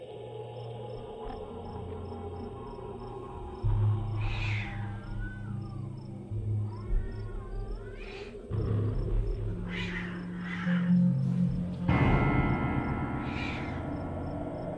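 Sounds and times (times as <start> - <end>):
low droning background: 0.0 - 14.7
cat screeching in eerie drawn-out yowls: 4.1 - 8.5, 9.4 - 11.1, 13.2 - 14.0.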